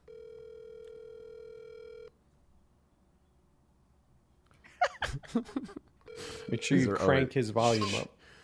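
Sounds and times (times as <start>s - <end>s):
buzzy phone ringback tone over the line: 0.0s - 2.1s, 6.1s - 7.0s
laughter: 4.8s - 6.4s
speech: 5.3s - 8.2s
faint line hiss: 7.6s - 8.4s.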